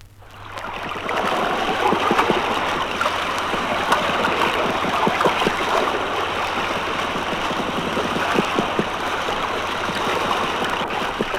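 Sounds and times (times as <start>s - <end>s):
underwater roar of a rough sea: 0.1s - 11.3s.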